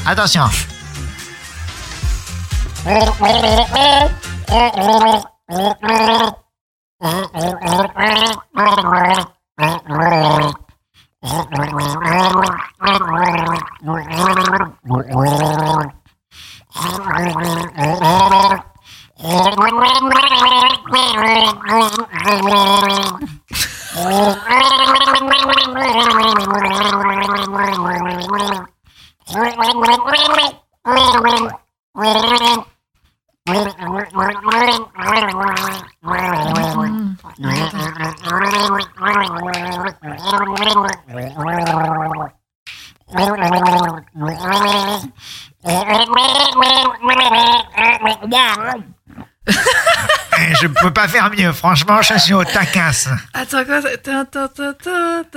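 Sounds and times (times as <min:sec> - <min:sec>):
speech: 0:00.0 - 0:00.8, 0:02.8 - 0:06.4, 0:07.0 - 0:10.6, 0:11.2 - 0:32.7, 0:33.5 - 0:42.4, 0:43.1 - 0:55.3
person singing a melody through a snorkel with wet gurgling: 0:02.8 - 0:06.3, 0:23.9 - 0:26.4, 0:36.2 - 0:38.0
laughter: 0:23.2 - 0:24.7, 0:49.5 - 0:53.3.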